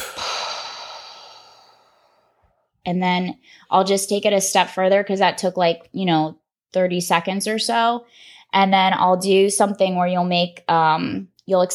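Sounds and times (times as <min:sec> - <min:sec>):
slow exhale during a breathing exercise: 0:00.0 - 0:02.5
speech: 0:02.8 - 0:11.7.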